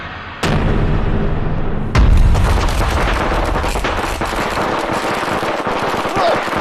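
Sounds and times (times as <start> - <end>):
explosive pack stuffed with firecrackers blasting: 0.4 - 6.6
firecrackers crackling and rumbling roar: 2.0 - 6.6.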